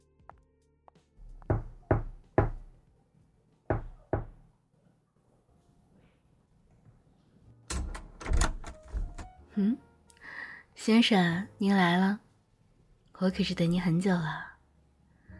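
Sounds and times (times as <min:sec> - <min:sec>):
knocking on door: 0:01.3 - 0:02.7, 0:03.7 - 0:04.4
door clattering and shuffling: 0:07.7 - 0:09.4
speech: 0:09.6 - 0:09.9, 0:10.8 - 0:12.2, 0:13.2 - 0:14.5.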